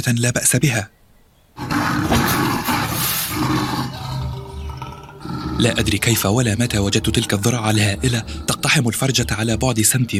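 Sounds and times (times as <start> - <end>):
speech: 0.0 - 1.0, 5.5 - 10.1
lioness roaring: 1.6 - 9.7.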